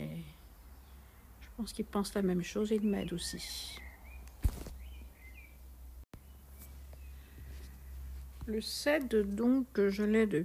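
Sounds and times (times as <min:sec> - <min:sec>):
birds chirping outside: 0:00.0 - 0:10.3
speech: 0:01.6 - 0:03.8, 0:08.5 - 0:10.4
knock or rustle: 0:04.4 - 0:04.8.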